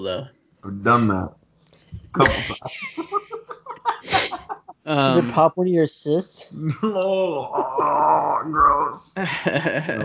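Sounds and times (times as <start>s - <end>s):
speech: 0.0s - 3.4s, 4.8s - 10.0s
laughter: 2.2s - 5.4s, 9.2s - 10.0s
person sneezing: 4.0s - 4.5s.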